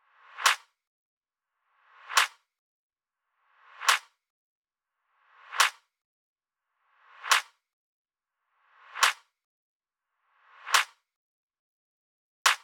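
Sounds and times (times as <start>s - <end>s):
wet clap loop: 3.9s - 4.1s, 7.3s - 7.5s, 9.0s - 9.2s, 12.5s - 12.6s.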